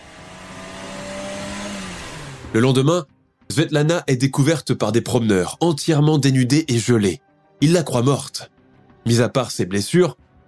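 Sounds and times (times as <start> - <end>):
car engine revving and accelerating: 0.0 - 2.8
speech: 2.5 - 10.2.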